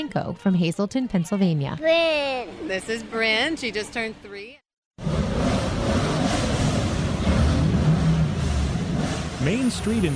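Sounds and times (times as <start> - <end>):
speech: 0.0 - 4.6, 9.4 - 10.1
rally car engine roaring and revving: 5.0 - 10.1.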